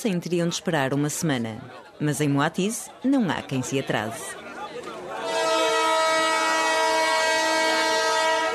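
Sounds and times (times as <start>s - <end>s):
speech: 0.0s - 4.4s
train whistle blast signalling passengers to board: 5.2s - 8.5s.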